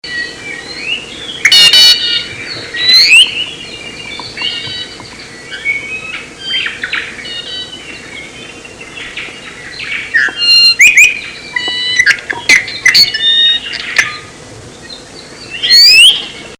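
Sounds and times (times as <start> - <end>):
low steady background hum: 0.0 - 16.5
ʻIʻiwi calls with squeaky creaky notes and sharp clicks: 1.4 - 7.8, 10.1 - 14.3, 15.6 - 16.5.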